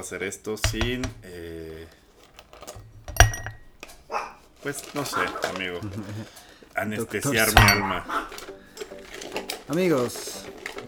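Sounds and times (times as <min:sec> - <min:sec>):
speech: 0:00.0 - 0:02.0, 0:04.6 - 0:08.4, 0:09.7 - 0:10.5
faint clattering: 0:00.0 - 0:10.8
dog barking angrily: 0:04.1 - 0:04.4, 0:05.0 - 0:05.6, 0:07.8 - 0:08.5.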